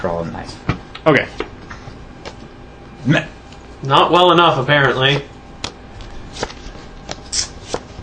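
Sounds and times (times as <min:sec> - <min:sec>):
speech: 0:00.0 - 0:01.5, 0:03.0 - 0:05.3
deck of cards being shuffled and riffled: 0:04.8 - 0:08.0.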